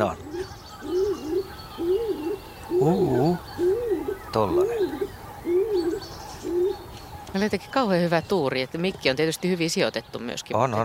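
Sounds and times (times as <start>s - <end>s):
speech: 0.0s - 0.2s, 2.8s - 3.4s, 4.4s - 5.1s, 7.4s - 10.8s
stock dove giving low pumping coo: 0.0s - 7.0s
faint birdsong: 0.0s - 10.8s.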